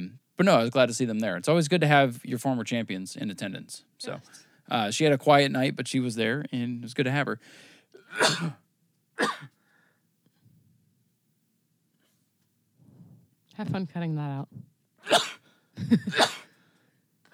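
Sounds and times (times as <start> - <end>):
speech: 0.1 - 8.6, 9.2 - 9.6, 13.6 - 16.4
person sneezing during an allergy attack: 8.1 - 8.6, 15.0 - 15.4, 16.1 - 16.5.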